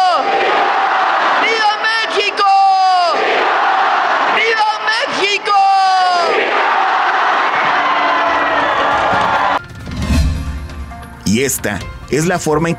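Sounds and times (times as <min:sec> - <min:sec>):
large crowd shouting vivas at Independence Cry celebration in Mexico: 0:00.0 - 0:09.6
scattered yelling: 0:00.0 - 0:09.6
speech: 0:11.4 - 0:12.7.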